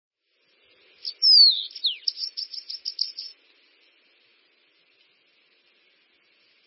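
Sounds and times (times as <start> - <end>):
bananaquit song: 0.8 - 3.4.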